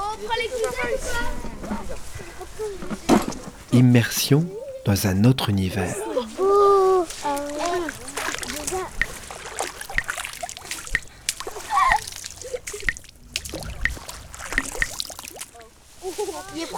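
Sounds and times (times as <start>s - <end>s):
children of about ten calling out: 0.0s - 3.2s, 3.8s - 9.2s, 11.4s - 12.9s
speech: 0.2s - 3.0s, 3.8s - 6.1s
pond water splashing as children wade near Douai in northern France: 3.7s - 16.7s.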